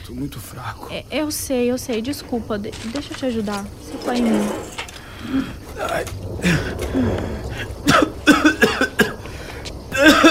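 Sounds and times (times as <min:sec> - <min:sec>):
speech: 0:00.1 - 0:08.6
raspy throat-clearing cough: 0:07.8 - 0:09.3, 0:09.9 - 0:10.2
harsh coughs: 0:07.8 - 0:10.2.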